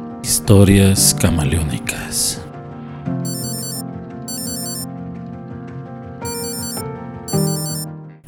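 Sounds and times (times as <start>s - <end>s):
speech: 0.3s - 2.5s
alarm clock ringing with electronic melody: 3.3s - 4.9s, 6.3s - 7.9s.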